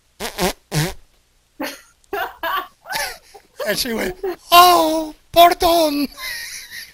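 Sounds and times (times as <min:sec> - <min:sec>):
voice imitating a fart: 0:00.2 - 0:01.0
speech: 0:03.7 - 0:06.4.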